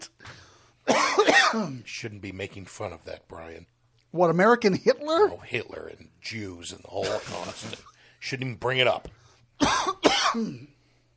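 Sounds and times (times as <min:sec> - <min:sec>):
person coughing: 0:00.9 - 0:01.8, 0:09.6 - 0:10.8
speech: 0:01.6 - 0:10.8.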